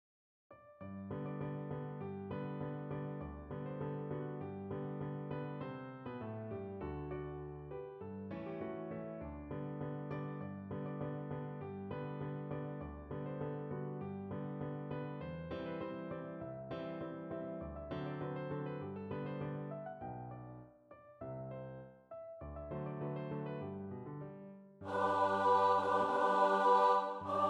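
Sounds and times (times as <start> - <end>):
piano: 0.5 - 27.4
SATB choir singing: 24.8 - 27.4.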